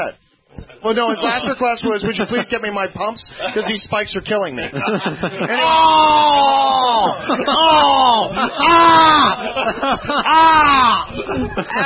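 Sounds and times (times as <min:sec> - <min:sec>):
speech: 0:00.0 - 0:11.8
laughter: 0:00.6 - 0:11.8
person screaming into the microphone: 0:05.5 - 0:09.5, 0:10.2 - 0:11.2.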